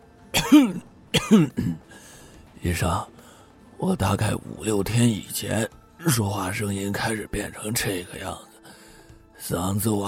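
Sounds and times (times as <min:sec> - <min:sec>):
hoarse elderly man clearing his throat: 0:00.4 - 0:01.9
speech: 0:00.5 - 0:01.8, 0:02.6 - 0:03.1, 0:03.8 - 0:08.5, 0:09.4 - 0:10.0.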